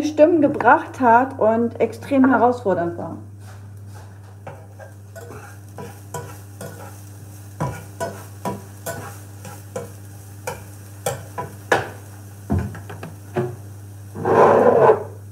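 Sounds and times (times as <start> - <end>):
speech: 0.0 - 3.3
sizzling scrape in a frying pan: 3.4 - 15.3
food being stirred in a frying pan: 4.4 - 7.0, 7.6 - 11.6, 14.1 - 15.2.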